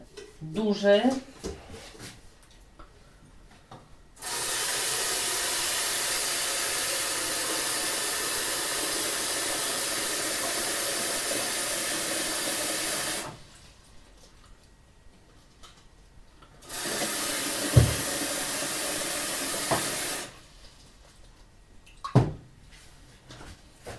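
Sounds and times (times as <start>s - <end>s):
speech: 0.4s - 1.4s
water gushing from a tap into a large pot for broth: 4.2s - 13.3s, 16.7s - 20.4s.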